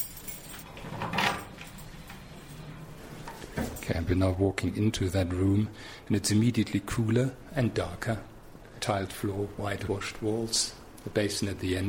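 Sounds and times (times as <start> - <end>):
keys jangling: 0.0 - 2.1
speech: 3.9 - 11.8.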